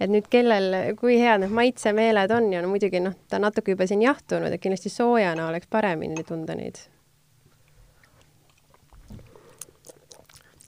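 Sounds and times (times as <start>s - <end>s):
speech: 0.0s - 7.0s
low steady hum: 0.0s - 10.6s
several people slurping and swallowing a drink: 7.7s - 10.6s.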